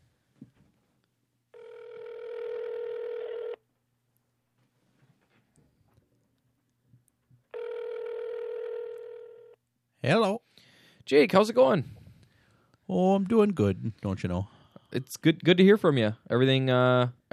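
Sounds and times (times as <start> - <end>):
outgoing telephone call ringing tones: 1.5 - 3.6, 7.5 - 9.6
speech: 11.1 - 12.0, 13.2 - 17.3.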